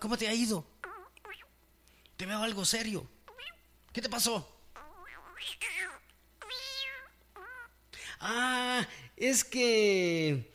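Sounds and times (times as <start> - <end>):
speech: 0.0 - 0.8, 2.2 - 4.6, 5.4 - 5.8, 8.2 - 10.5
cat meowing: 4.8 - 7.7.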